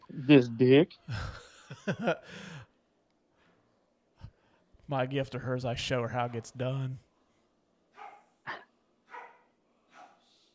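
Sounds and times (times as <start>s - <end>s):
speech: 0.3s - 2.6s, 4.9s - 7.1s
laughter: 1.1s - 2.6s
dogs barking: 7.9s - 10.3s.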